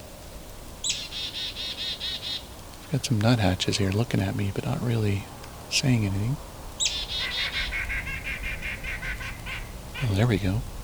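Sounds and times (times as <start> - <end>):
low outdoor hum: 0.0 - 10.8
hairy woodpecker squeaky high-pitched call: 0.8 - 2.5, 6.8 - 10.8
speech: 2.9 - 6.5, 10.1 - 10.7.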